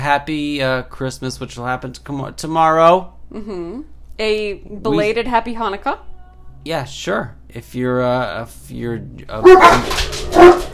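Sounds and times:
speech: 0.0 - 10.2
several dogs barking: 9.4 - 10.7.

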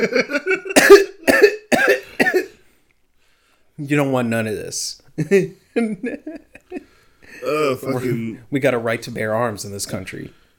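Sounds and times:
speech: 0.0 - 0.4, 3.8 - 6.4, 7.4 - 10.5
person forcing out loud harsh coughs: 0.0 - 2.6
brief voiced grunt: 7.3 - 8.3.

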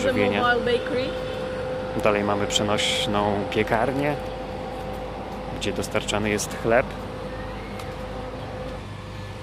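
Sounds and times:
speech: 0.0 - 1.3, 2.0 - 4.4, 5.6 - 7.0
power generators running: 0.0 - 9.4.

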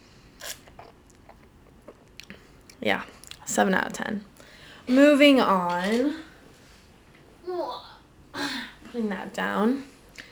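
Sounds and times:
person sipping beer from a pint glass: 0.3 - 3.4
soft swallowing clicks and mouth noises: 0.4 - 3.5
speech: 2.8 - 4.3, 4.9 - 6.3, 9.0 - 9.9.

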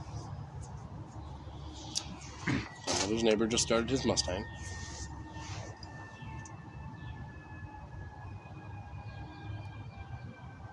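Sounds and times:
low rumble of traffic: 0.0 - 10.7
siren wailing: 1.3 - 10.7
speech: 2.5 - 4.8.

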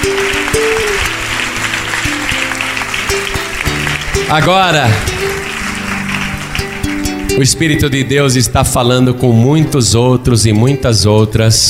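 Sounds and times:
large crowd applauding: 0.0 - 8.0
held keyboard chords: 0.0 - 11.6
speech: 4.3 - 5.2, 7.4 - 11.6.

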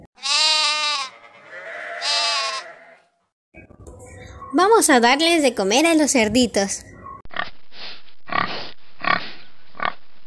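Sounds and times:
flock of sheep bleating: 0.2 - 3.1
speech: 4.5 - 6.9.

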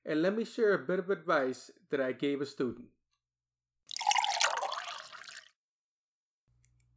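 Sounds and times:
speech: 0.1 - 3.0
coffee pouring into a cup: 3.9 - 5.6.

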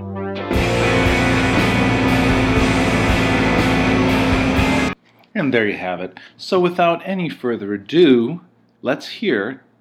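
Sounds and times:
five songs playing at once: 0.4 - 5.0
speech: 5.4 - 9.6.

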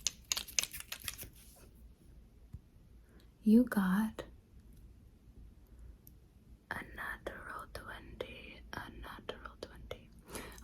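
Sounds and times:
dice rolling and clattering on a hard surface: 0.0 - 1.4
speech: 3.4 - 4.2.

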